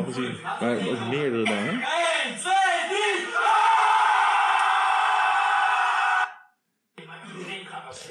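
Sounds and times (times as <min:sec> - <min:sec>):
speech: 0:00.0 - 0:02.6
group of people shouting together for energy: 0:02.6 - 0:06.5.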